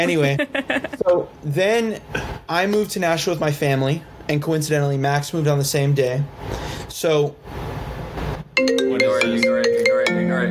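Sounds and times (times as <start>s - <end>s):
speech: 0.0s - 7.7s, 8.6s - 10.4s
phone ringtone with bright melodic chiming tune: 8.6s - 10.4s.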